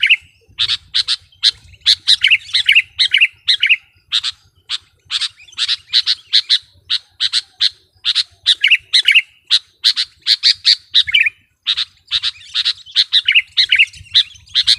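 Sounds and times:
sooty-headed bulbul song: 0:00.0 - 0:14.7.

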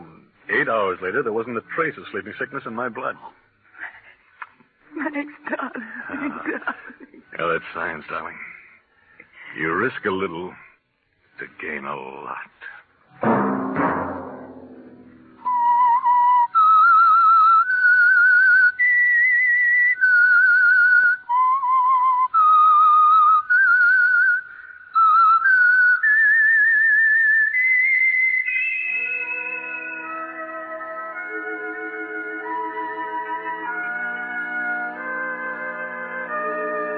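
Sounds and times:
speech: 0:00.5 - 0:03.4, 0:05.0 - 0:08.5, 0:09.5 - 0:10.6, 0:11.4 - 0:13.3
laughter: 0:04.9 - 0:07.4
whistled melody: 0:15.3 - 0:36.9.

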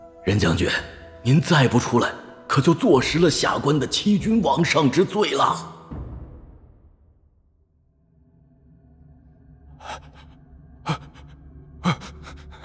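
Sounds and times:
speech: 0:00.3 - 0:05.7
man's anxious panting breaths in a prison cell: 0:09.8 - 0:12.6.

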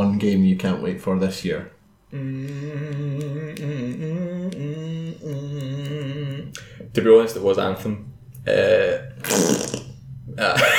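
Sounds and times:
speech: 0:00.2 - 0:09.7, 0:10.4 - 0:10.7
person blowing a loud wet raspberry with the mouth: 0:02.1 - 0:06.6, 0:08.5 - 0:10.6.

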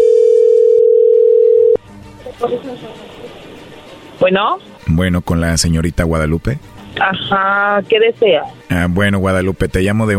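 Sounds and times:
telephone dial tone as a call is dialled: 0:00.0 - 0:01.8
speech: 0:02.4 - 0:03.2, 0:04.2 - 0:10.1.

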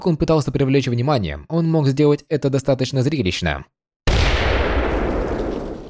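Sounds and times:
speech: 0:00.0 - 0:03.8
bomb explosion in the corridors of an underground headquarters: 0:04.1 - 0:05.8.

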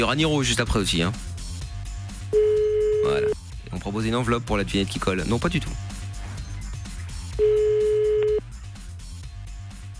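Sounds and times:
speech: 0:00.0 - 0:01.3, 0:03.1 - 0:05.8
outgoing phone call ringing tone: 0:02.3 - 0:03.4, 0:07.4 - 0:08.4.

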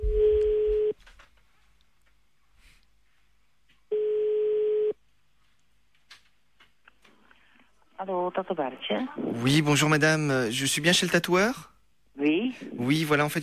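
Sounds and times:
ringback tone of an outgoing telephone call: 0:00.0 - 0:01.0, 0:03.9 - 0:05.0
speech: 0:08.0 - 0:13.4.

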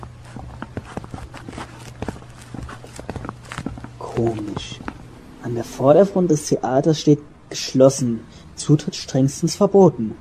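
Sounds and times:
footsteps walking along a narrow private lane: 0:00.0 - 0:06.0
low steady hum: 0:00.0 - 0:10.1
speech: 0:04.2 - 0:04.8, 0:05.4 - 0:10.1.

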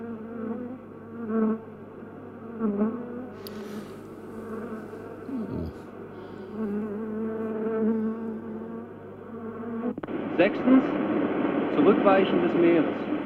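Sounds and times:
bees buzzing inside a beehive: 0:00.0 - 0:11.6
speech: 0:10.4 - 0:11.0, 0:11.8 - 0:13.1.

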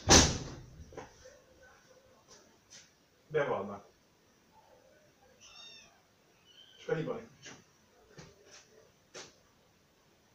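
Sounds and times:
speech: 0:03.3 - 0:03.9, 0:06.9 - 0:07.6
cat meowing: 0:05.3 - 0:06.8.

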